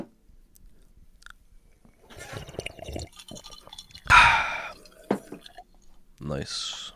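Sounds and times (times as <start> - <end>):
person sipping, slurping and gulping ice water from a glass: 1.6 - 6.0
speech: 6.3 - 6.8.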